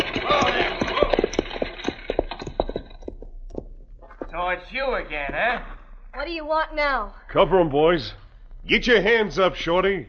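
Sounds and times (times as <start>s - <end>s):
horses' hooves clopping on hard ground as they pull up: 0.0s - 5.5s
speech: 4.5s - 10.0s.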